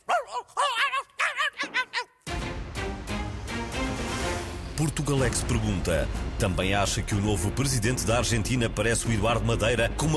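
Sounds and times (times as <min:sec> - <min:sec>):
pet dog yapping: 0:00.0 - 0:02.2
loud dense music: 0:02.3 - 0:10.1
speech: 0:04.8 - 0:10.1.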